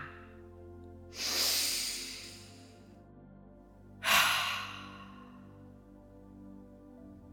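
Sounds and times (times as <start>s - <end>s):
long deep nasal inhale: 1.1s - 2.8s, 4.0s - 5.5s
sharp forceful mouth exhale: 1.2s - 2.7s, 4.0s - 5.3s.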